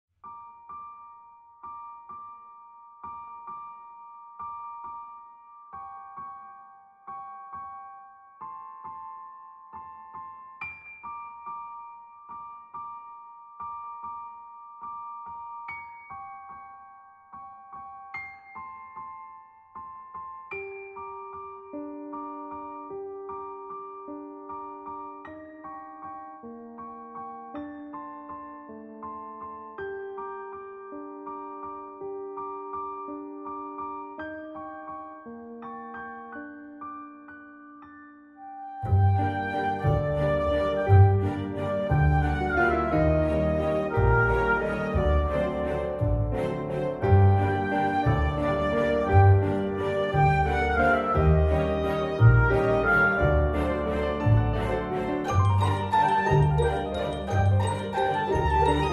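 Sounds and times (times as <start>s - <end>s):
waltz music: 38.8s - 58.9s.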